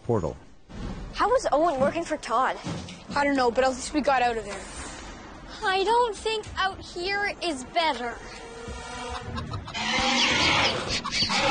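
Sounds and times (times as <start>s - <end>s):
speech: 0.1s - 0.5s, 1.2s - 4.8s, 5.6s - 9.4s, 10.0s - 11.4s
chickens clucking and squawking: 9.0s - 11.4s.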